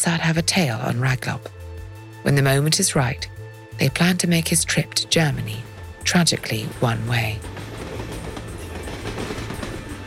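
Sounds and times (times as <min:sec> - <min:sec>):
speech: 0:00.0 - 0:01.6, 0:02.2 - 0:07.6
train running on rails in Germany: 0:05.1 - 0:10.0.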